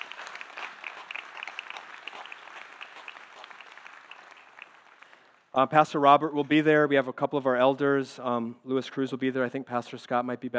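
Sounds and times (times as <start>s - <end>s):
audience applauding: 0.0s - 5.6s
speech: 5.6s - 10.5s.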